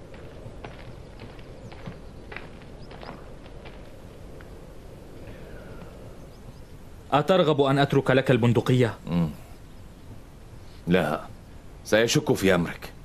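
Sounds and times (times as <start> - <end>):
donkey hooves clip-clopping in an unhurried walk: 0.0 - 6.1
constant low rumble of outdoor noise: 0.0 - 13.0
speech: 7.1 - 9.4, 10.9 - 11.3, 11.9 - 12.9.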